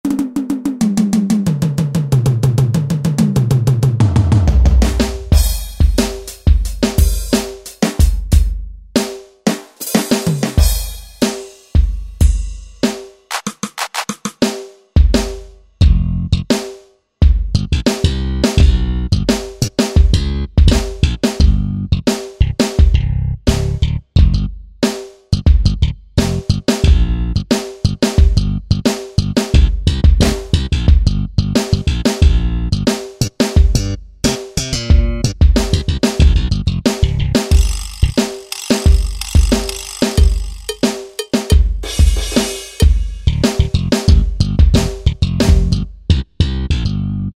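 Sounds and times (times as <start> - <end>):
drums: 0.0 - 46.3
bass: 1.5 - 6.0, 15.8 - 16.5, 17.2 - 38.2, 43.2 - 47.3.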